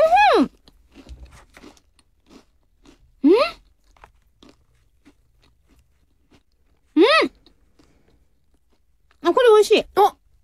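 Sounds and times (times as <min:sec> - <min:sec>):
biting into a seed-topped snack: 0:00.0 - 0:09.4.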